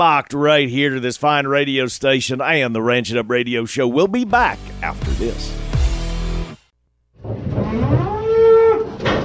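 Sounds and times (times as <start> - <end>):
speech: 0.0 - 5.6
cow mooing: 7.5 - 9.1.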